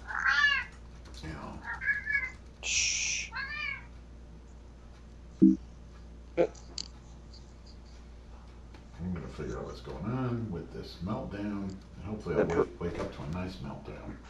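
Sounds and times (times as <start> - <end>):
cat meowing and hissing: 0.1 - 0.7, 1.7 - 3.9
speech: 6.4 - 6.6, 9.8 - 14.2.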